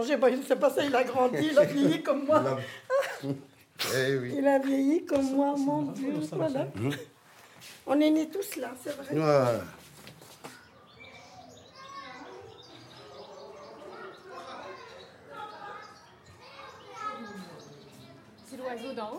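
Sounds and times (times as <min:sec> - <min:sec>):
speech: 0:00.0 - 0:09.8
laughter: 0:00.9 - 0:03.6, 0:06.4 - 0:07.2
bird singing overhead: 0:10.5 - 0:19.1.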